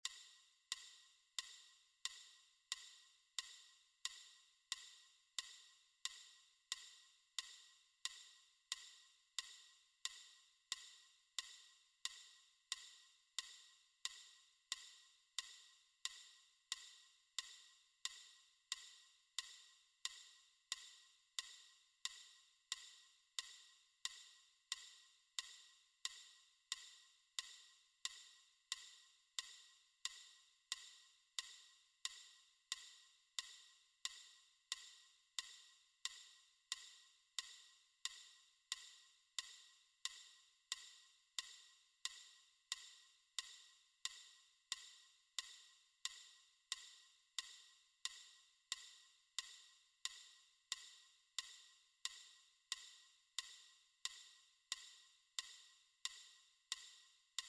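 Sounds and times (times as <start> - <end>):
metronome ticking: 0.0 - 57.4.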